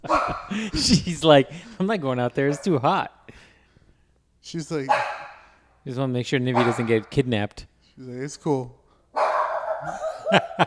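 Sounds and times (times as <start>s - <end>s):
dog barking: 0.0s - 0.5s, 4.9s - 5.5s, 6.5s - 7.1s, 9.2s - 10.3s
dog yelping: 0.0s - 0.5s, 4.9s - 5.4s, 6.6s - 7.0s, 9.2s - 10.4s
speech: 0.6s - 3.2s, 4.4s - 5.1s, 5.8s - 8.8s, 9.8s - 10.6s.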